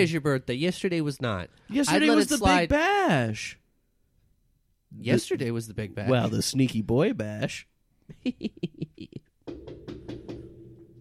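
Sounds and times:
speech: 0.0s - 3.6s, 4.9s - 9.2s
firm knocks on a door as guests arrive: 9.4s - 10.9s.

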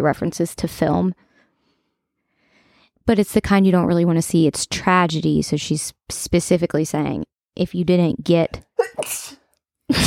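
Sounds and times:
speech: 0.0s - 1.3s, 3.1s - 9.2s, 9.9s - 10.0s
person sneezing: 8.8s - 9.5s.

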